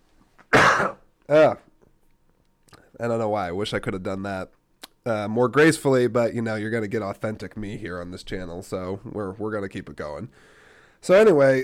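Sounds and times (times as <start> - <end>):
throat clearing: 0.5 - 1.1
speech: 0.8 - 1.6, 3.0 - 11.6.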